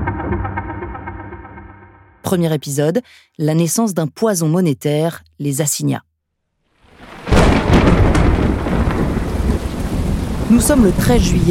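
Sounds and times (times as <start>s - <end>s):
speech: 2.3s - 6.1s, 10.5s - 11.4s
loud thunderclap during a thunderstorm over France: 6.8s - 11.4s
steady heavy rain pouring down: 6.8s - 11.4s.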